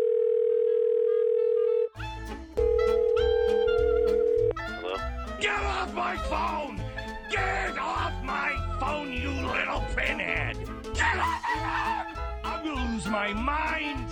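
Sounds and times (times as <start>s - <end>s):
telephone dial tone: 0.0s - 1.9s, 2.6s - 4.5s
lively busy musical jingle: 2.0s - 13.8s
punchy drumbeat: 2.6s - 14.1s
laughter: 9.3s - 12.6s
speech: 13.0s - 14.1s.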